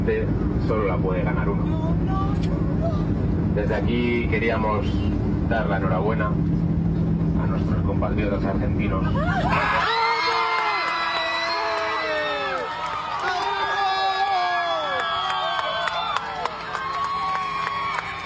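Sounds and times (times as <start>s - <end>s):
speech: 0.0s - 6.7s, 7.6s - 10.0s
crowd of passengers shouting and cheering in an aircraft cabin: 8.9s - 18.2s
passengers clapping in an aircraft cabin: 10.0s - 18.2s.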